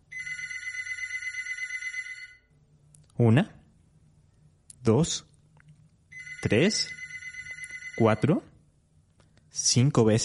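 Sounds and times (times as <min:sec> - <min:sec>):
faint low hum: 0:00.0 - 0:10.2
telephone bell ringing in a metallic trill: 0:00.1 - 0:02.5, 0:06.1 - 0:08.3
speech: 0:03.2 - 0:03.6, 0:04.8 - 0:05.3, 0:06.4 - 0:07.0, 0:08.0 - 0:08.5, 0:09.6 - 0:10.2.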